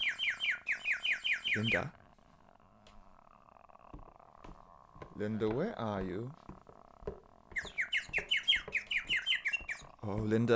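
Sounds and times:
bird chirping: 0:00.0 - 0:02.0, 0:07.5 - 0:10.5
speech: 0:01.6 - 0:02.0, 0:05.2 - 0:06.4, 0:10.0 - 0:10.5.

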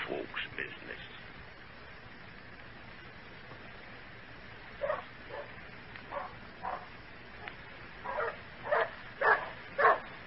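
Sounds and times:
dogs barking with yips: 0:04.8 - 0:06.9, 0:08.0 - 0:10.1.

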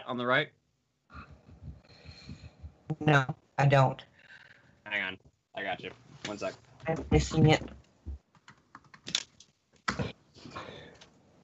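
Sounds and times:
speech: 0:00.1 - 0:00.6, 0:03.0 - 0:04.1, 0:05.0 - 0:07.8
typing on a computer keyboard: 0:08.4 - 0:09.3.

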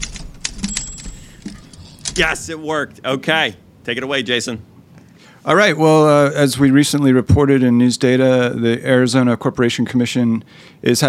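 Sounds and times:
typewriter sound effect key clacks: 0:00.0 - 0:02.3
speech: 0:02.2 - 0:04.7, 0:05.4 - 0:11.0.

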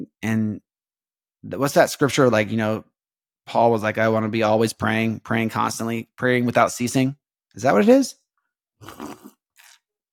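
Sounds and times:
speech: 0:00.2 - 0:00.6, 0:01.4 - 0:08.2, 0:08.8 - 0:09.3
slurping coffee: 0:08.8 - 0:09.9.

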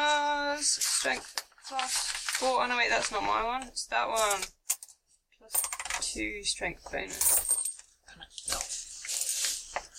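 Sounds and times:
speech: 0:00.7 - 0:04.6, 0:05.4 - 0:07.5
coins clinking and jingling as they're handled: 0:05.5 - 0:06.0, 0:07.2 - 0:07.8.

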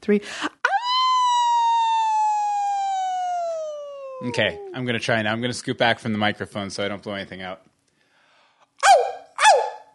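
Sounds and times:
speech: 0:00.0 - 0:00.6, 0:04.2 - 0:07.7
person howling like a wolf in a howling contest: 0:00.7 - 0:04.8.

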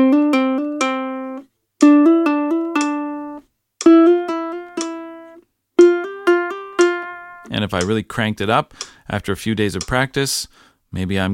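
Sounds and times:
double mordent ornament: 0:00.0 - 0:07.5
speech: 0:07.7 - 0:11.3.

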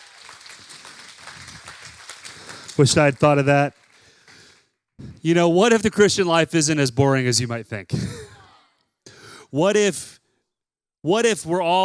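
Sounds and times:
audience clapping: 0:00.0 - 0:04.8
speech: 0:02.8 - 0:03.8, 0:05.2 - 0:08.2, 0:09.5 - 0:10.2, 0:11.0 - 0:11.8.

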